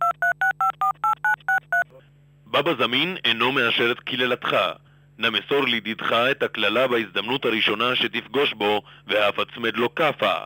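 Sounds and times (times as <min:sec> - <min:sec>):
telephone keypad touch tones dialing a number: 0:00.0 - 0:02.0
low constant hum: 0:00.1 - 0:10.4
speech: 0:02.6 - 0:10.4.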